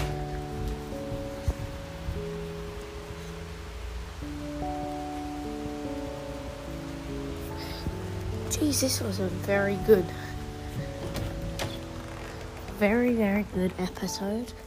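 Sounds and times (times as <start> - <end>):
steady rain hissing and pattering: 0.0 - 14.6
speech: 8.6 - 10.2, 12.8 - 14.6.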